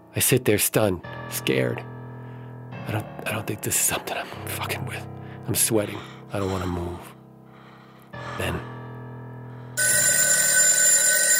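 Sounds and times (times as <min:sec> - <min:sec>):
speech: 0:00.2 - 0:01.9, 0:02.8 - 0:07.1, 0:08.2 - 0:08.7
telephone bell ringing: 0:09.8 - 0:11.3.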